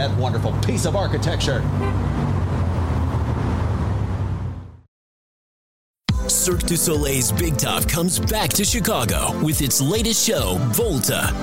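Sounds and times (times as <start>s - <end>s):
speech: 0.0s - 2.4s, 6.4s - 11.4s
busy street traffic during a city bus tour: 0.0s - 4.9s
sustained car horn honking: 1.7s - 2.2s.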